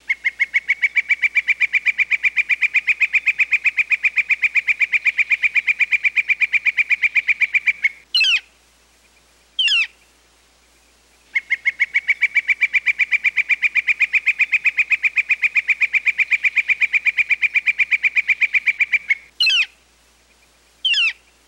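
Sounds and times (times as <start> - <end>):
red-shafted flicker: 0.1 - 8.6, 9.6 - 10.1, 11.2 - 21.3.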